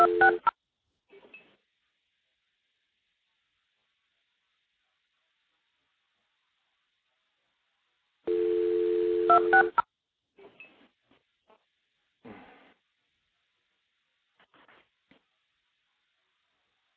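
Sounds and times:
multi-frequency telephone tones dialing into stacked phone trunks: 0.0 - 0.5, 8.3 - 9.8.

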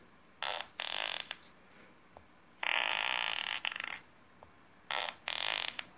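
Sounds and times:
fart sound effects played from an app: 0.4 - 1.4, 2.6 - 4.0, 4.9 - 5.9.

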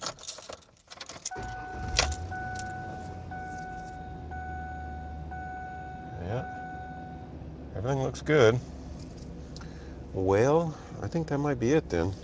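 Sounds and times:
keys jingling: 0.0 - 1.3
car engine cranking and idling: 1.1 - 12.2
thin electronic warning chime tone: 1.3 - 7.2
speech: 7.8 - 8.7, 10.2 - 12.2.

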